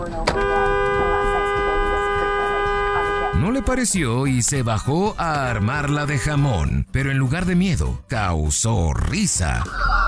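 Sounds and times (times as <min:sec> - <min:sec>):
low rumble of traffic or engine noise: 0:00.0 - 0:04.8
car horn honking: 0:00.2 - 0:04.4
speech: 0:03.7 - 0:10.0.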